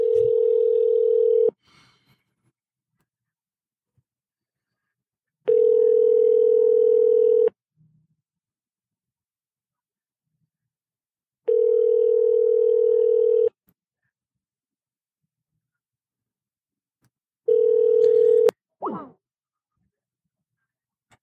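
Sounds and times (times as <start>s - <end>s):
ringing tone of an outgoing phone call placed over the internet: 0.0s - 1.6s, 5.5s - 7.5s, 11.5s - 13.5s, 17.5s - 18.5s.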